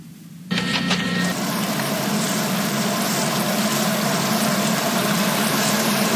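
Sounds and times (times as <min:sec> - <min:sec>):
low mechanical hum: 0:00.0 - 0:06.1
lawn sprinklers spraying water: 0:01.3 - 0:06.1.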